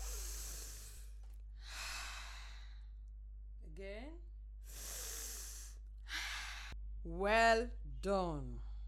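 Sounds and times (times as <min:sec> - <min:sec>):
people breathing in and out during a standing breathing exercise: 0:00.0 - 0:03.2, 0:04.6 - 0:06.8
speech: 0:03.8 - 0:04.3, 0:07.0 - 0:08.7.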